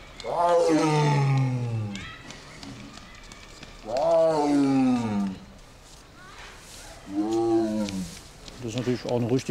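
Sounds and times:
speech: 0.2 - 1.1, 9.1 - 9.4
tiger roaring: 0.2 - 2.0, 3.9 - 5.5, 7.1 - 8.1.

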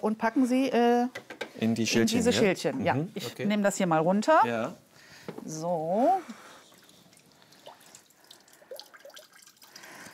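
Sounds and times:
speech: 0.0 - 4.8, 5.4 - 6.4
water dripping from a soaked block of floral foam lifted out to drain: 6.4 - 10.1.

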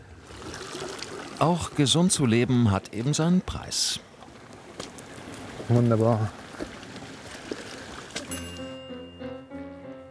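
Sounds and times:
water gushing from a tap into a canister: 0.0 - 1.8
speech: 1.4 - 4.1, 5.7 - 6.7.

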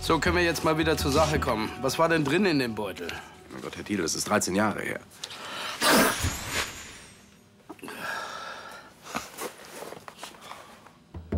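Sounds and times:
speech: 0.0 - 6.4
person sneezing: 5.8 - 6.4.

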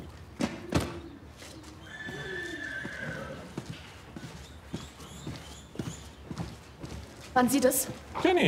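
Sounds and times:
horse hooves clip-clopping: 0.0 - 8.4
horse whinnying in a long wavering call: 1.8 - 3.6
speech: 7.4 - 8.4.

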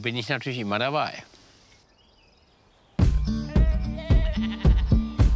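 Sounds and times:
speech: 0.0 - 1.3
Toggenburg goats bleating: 3.4 - 5.2.

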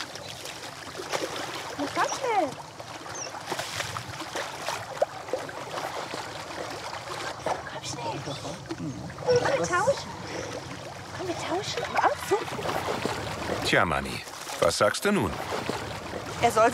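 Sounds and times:
churning sloshing water: 0.0 - 16.7
speech: 2.0 - 2.7, 8.3 - 15.8, 16.4 - 16.7.

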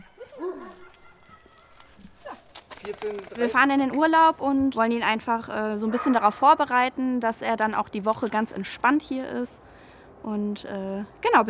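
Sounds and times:
dog barking and yipping at a dog boarding kennel: 0.3 - 1.0, 5.8 - 6.4
speech: 2.9 - 11.4.

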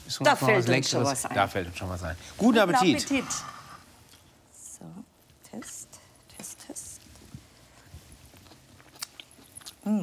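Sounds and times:
speech: 0.1 - 3.6, 5.5 - 5.8, 9.8 - 10.0
crunchy chewing of cooked Swiss chard during a meal: 7.8 - 10.0.

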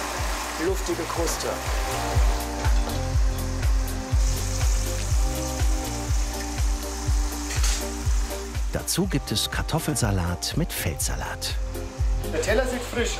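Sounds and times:
breaded fish deep-frying in plenty of fat: 0.0 - 9.9
speech: 0.6 - 3.0, 8.7 - 11.7, 12.3 - 13.1.

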